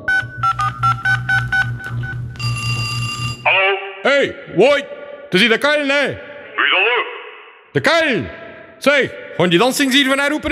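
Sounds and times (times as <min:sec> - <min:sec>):
telephone keypad tones of a number being dialled: 0:00.0 - 0:03.4
speech: 0:04.1 - 0:06.3, 0:07.7 - 0:10.5.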